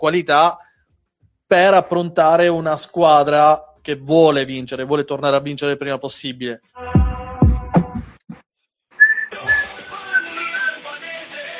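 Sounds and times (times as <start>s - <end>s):
speech: 0.0s - 0.7s, 1.5s - 6.9s
person whistling a short tune: 9.0s - 10.9s.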